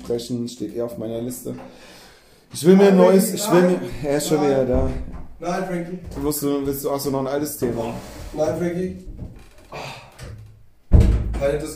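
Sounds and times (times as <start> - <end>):
speech: 0.1 - 9.8, 11.4 - 11.7
door swinging and knocking with a loud thud: 3.9 - 7.8, 8.4 - 11.7
door being pushed open: 4.0 - 6.8, 7.6 - 11.6.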